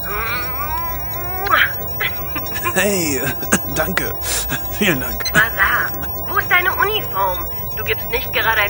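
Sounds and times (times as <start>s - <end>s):
kitten meowing: 0.0s - 3.1s
laughter: 0.0s - 8.6s
speech: 2.8s - 8.6s.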